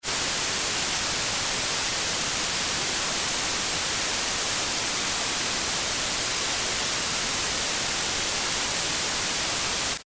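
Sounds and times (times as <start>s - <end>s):
white noise: 0.0s - 10.0s.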